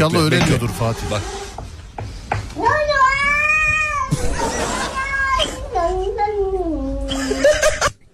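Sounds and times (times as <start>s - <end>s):
speech: 0.0s - 1.6s
cat yowling in long drawn-out meows: 2.6s - 6.6s
laughter: 7.1s - 8.1s.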